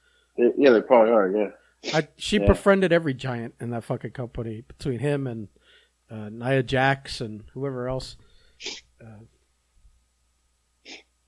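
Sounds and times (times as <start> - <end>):
speech: 0.4 - 9.4
person sniffling from allergies: 8.5 - 8.9, 10.8 - 11.1.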